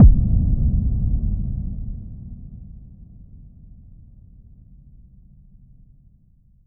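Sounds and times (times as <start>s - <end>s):
bass house nuke impact effect: 0.0s - 4.0s.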